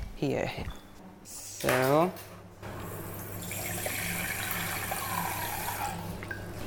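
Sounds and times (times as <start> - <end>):
speech: 0.2 - 0.8, 1.6 - 2.3
water pouring into a measuring cup for a tapioca flour recipe: 3.1 - 6.5.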